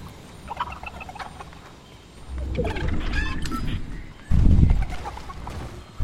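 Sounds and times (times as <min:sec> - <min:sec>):
chicken clucking: 0:00.4 - 0:05.7
low rumble: 0:02.0 - 0:06.0.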